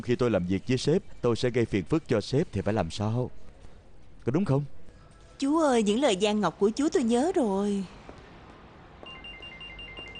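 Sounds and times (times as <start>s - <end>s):
speech: 0.0s - 3.5s, 4.2s - 4.8s, 5.4s - 8.0s
telephone ringing with an electronic warble: 9.1s - 10.1s.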